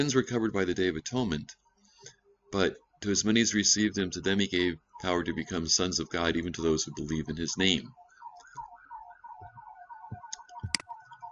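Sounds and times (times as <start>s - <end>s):
speech: 0.0s - 8.0s
fire truck siren wailing: 2.4s - 11.2s.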